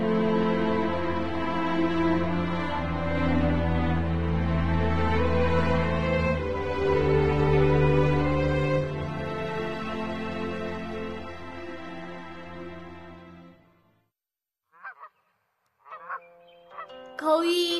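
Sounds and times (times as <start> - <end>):
sustained music: 0.0 - 14.1, 16.2 - 17.7
goose honking: 15.8 - 16.9.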